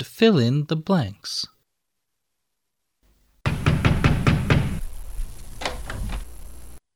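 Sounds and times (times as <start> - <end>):
speech: 0.0 - 1.5
knocking on a locked bathroom door: 3.5 - 6.4.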